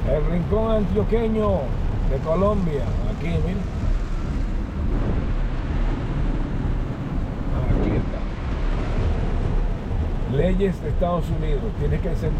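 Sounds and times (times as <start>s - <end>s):
heavy rain drumming on a moving car: 0.0s - 12.3s
low road rumble: 0.0s - 12.3s
speech: 0.1s - 3.9s, 10.3s - 12.3s.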